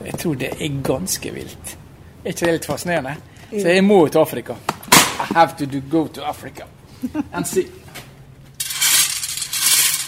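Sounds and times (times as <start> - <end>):
speech: 0.2 - 7.9
small steel balls clinking in a rotating drum grinding pigment: 8.6 - 10.0.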